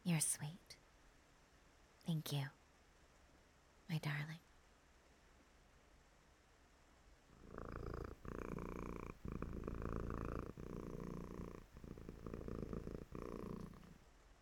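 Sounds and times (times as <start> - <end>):
speech: 0.1 - 0.8, 2.0 - 2.6, 3.9 - 4.5
cat purring: 7.3 - 14.1.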